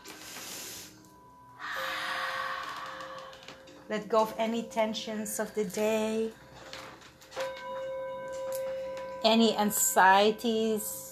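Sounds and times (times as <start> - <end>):
soft slow breaths in and out during a guided meditation: 0.1 - 3.9
steady tone: 1.1 - 9.2
speech: 3.9 - 6.4, 9.2 - 11.0.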